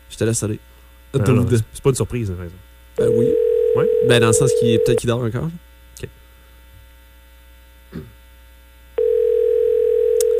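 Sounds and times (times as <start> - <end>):
speech: 0.2 - 6.2
telephone line tone while a call is being placed: 3.0 - 5.0, 9.0 - 10.3
click: 10.2 - 10.3.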